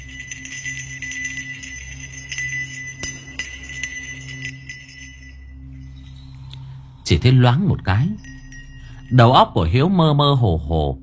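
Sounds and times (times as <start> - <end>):
small bell hanging on a fortune-telling flag jingling: 0.0 - 6.4, 7.8 - 9.6
speech: 7.1 - 8.3, 9.1 - 11.0.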